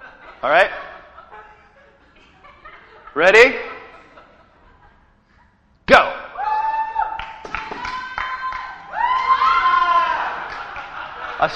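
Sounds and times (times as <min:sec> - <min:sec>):
laughter: 0:00.0 - 0:05.7, 0:09.6 - 0:11.5
speech: 0:00.4 - 0:00.8, 0:03.2 - 0:03.7
group cheering and shouting in support of competitors in a chasing game: 0:06.4 - 0:11.5
people whooping: 0:06.4 - 0:11.5
scattered claps: 0:07.0 - 0:11.5.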